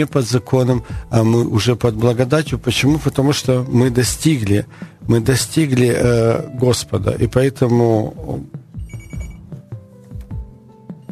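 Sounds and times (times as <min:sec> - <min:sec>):
speech: 0:00.0 - 0:08.6
telephone ringing with an incoming call, electronic ringtone: 0:08.8 - 0:09.5, 0:11.0 - 0:11.1.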